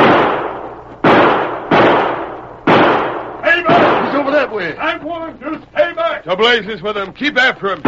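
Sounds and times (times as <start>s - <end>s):
gunshots in a Western shootout: 0.0s - 4.8s
speech: 4.5s - 7.8s.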